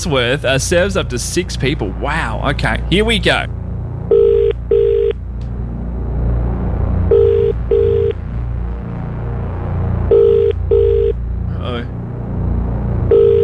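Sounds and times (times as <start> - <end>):
speech: 0.0 - 3.6
constant low rumble: 0.0 - 13.4
telephone ringing tone after dialling: 4.1 - 5.2, 7.1 - 8.2, 10.1 - 11.2, 13.1 - 13.4.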